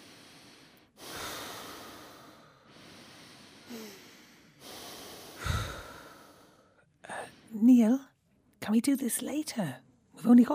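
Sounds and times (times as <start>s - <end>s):
slow deliberate breathing with airy inhales and exhales: 0.0s - 7.6s
speech: 7.6s - 8.1s, 8.7s - 10.5s.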